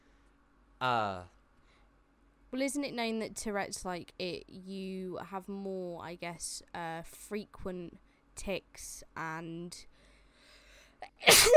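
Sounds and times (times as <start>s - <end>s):
speech: 0.8s - 1.4s, 2.5s - 9.9s, 11.0s - 11.5s
person sneezing: 11.1s - 11.5s.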